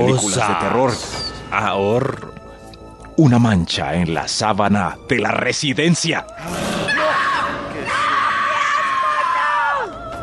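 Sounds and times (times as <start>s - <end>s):
speech: 0.1s - 2.4s, 3.2s - 7.0s
loud frightened scream: 6.5s - 9.9s.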